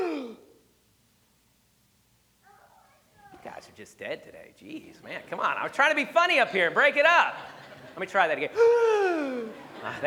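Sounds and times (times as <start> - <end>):
dramatic gasp by one voice: 0.0 - 0.6, 8.6 - 9.6
speech: 3.7 - 10.0
laughter: 5.1 - 10.0.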